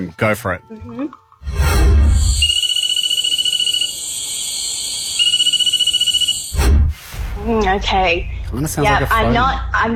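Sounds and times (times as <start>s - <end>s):
speech: 0.0s - 1.2s, 7.4s - 9.9s
steady whine of night insects: 2.1s - 6.6s
nursery frog calling in high-pitched pulsed trills: 2.4s - 6.6s.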